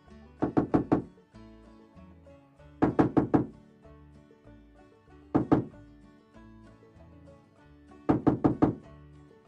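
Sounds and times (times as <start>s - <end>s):
loud knocking on an apartment door: 0.4s - 1.1s, 2.8s - 3.6s, 5.4s - 5.8s, 8.1s - 8.9s.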